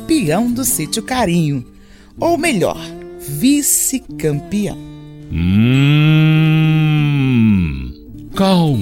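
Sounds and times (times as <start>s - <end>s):
speech: 0.1s - 6.2s, 8.4s - 8.8s
hungry calf mooing while waiting to nurse: 5.3s - 7.9s.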